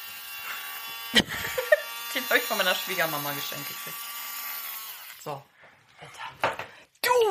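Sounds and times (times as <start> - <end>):
small electric fan buzzing: 0.0 - 5.2
speech: 2.3 - 4.1, 5.2 - 5.5.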